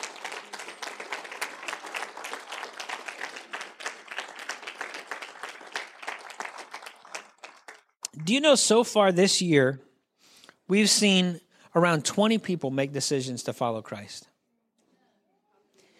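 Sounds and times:
church audience applauding: 0:00.0 - 0:08.0
speech: 0:08.2 - 0:09.9, 0:10.7 - 0:14.3.

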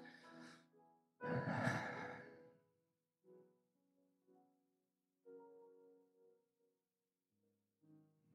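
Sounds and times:
group of people taking a deep breath together before praying: 0:01.3 - 0:02.4.

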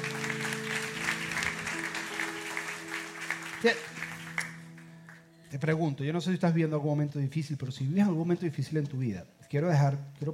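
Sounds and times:
crowd applauding: 0:00.0 - 0:05.3
speech: 0:03.6 - 0:04.0, 0:05.5 - 0:10.3.

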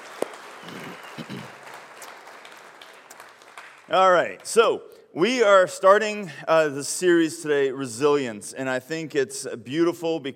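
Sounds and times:
single sharp clap: 0:00.0 - 0:03.8
audience applauding: 0:00.0 - 0:04.6
speech: 0:03.9 - 0:10.3.

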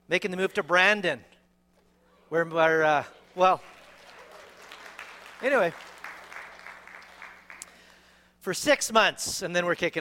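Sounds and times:
speech: 0:00.1 - 0:01.3, 0:02.3 - 0:03.7, 0:05.4 - 0:05.9, 0:08.4 - 0:09.9
faint scattered audience clapping: 0:03.2 - 0:08.1.

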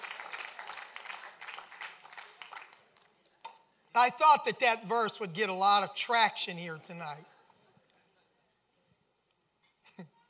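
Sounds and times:
crowd applauding: 0:00.0 - 0:03.4
speech: 0:04.0 - 0:07.3.

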